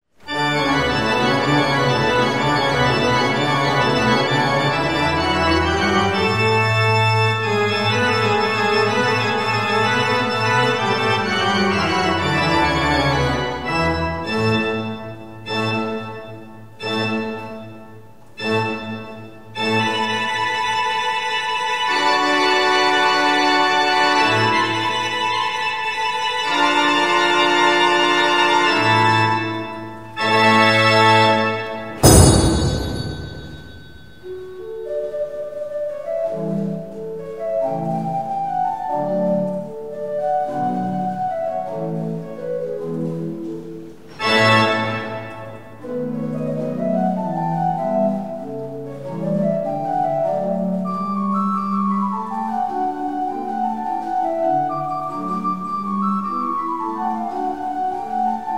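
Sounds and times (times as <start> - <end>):
1847 Lingiardi pipe organ in Saorge: 0.2 - 58.5.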